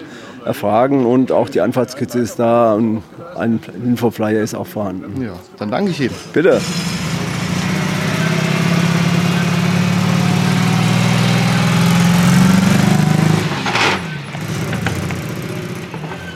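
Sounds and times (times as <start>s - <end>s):
speech: 0.4s - 7.0s
vintage fire police car engine idling: 6.6s - 16.1s.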